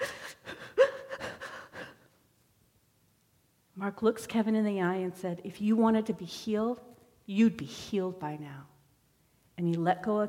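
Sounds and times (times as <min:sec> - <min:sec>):
person imitating breathless gasping sobbing: 0:00.0 - 0:02.1
speech: 0:03.8 - 0:08.7, 0:09.6 - 0:10.2.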